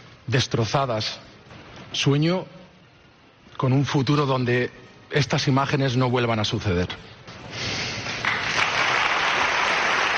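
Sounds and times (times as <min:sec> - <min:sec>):
speech: 0:00.3 - 0:01.3, 0:01.9 - 0:02.6, 0:03.6 - 0:07.1
crowd applauding in a sustained ovation: 0:08.1 - 0:10.1.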